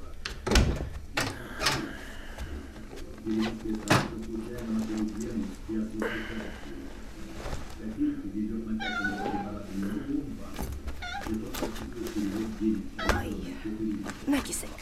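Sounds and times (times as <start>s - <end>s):
faint household noises: 0.0s - 14.8s
speech: 3.3s - 6.8s
domestic cat meowing: 8.7s - 9.7s, 11.0s - 11.4s, 13.0s - 13.4s.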